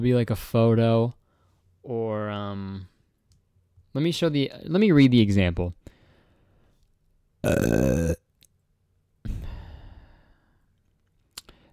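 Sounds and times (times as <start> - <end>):
speech: 0.0 - 1.2, 1.8 - 2.9, 3.9 - 5.9, 7.4 - 8.2
burp into a microphone: 7.4 - 8.3.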